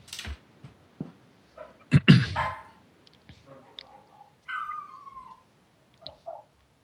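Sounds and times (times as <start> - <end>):
small dog whining: 1.6 - 2.8, 4.5 - 6.5
small dogs yapping at a delivery: 1.6 - 2.8, 3.5 - 6.6.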